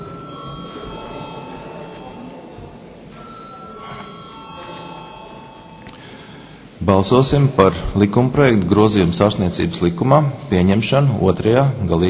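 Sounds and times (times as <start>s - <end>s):
electric bell ringing in a parliament chamber to call a vote: 0.0s - 2.4s, 3.2s - 6.2s
speech: 6.9s - 12.0s.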